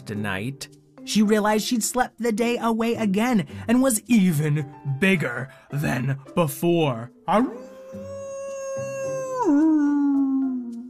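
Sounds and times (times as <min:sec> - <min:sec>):
speech: 0:00.1 - 0:08.1
big wolf howling: 0:07.4 - 0:10.8.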